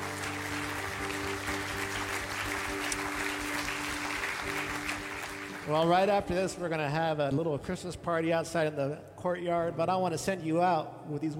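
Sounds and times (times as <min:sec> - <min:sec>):
audience applauding: 0:00.0 - 0:06.4
low steady hum of organ or keyboard chords: 0:00.0 - 0:08.8
speech: 0:05.7 - 0:11.3.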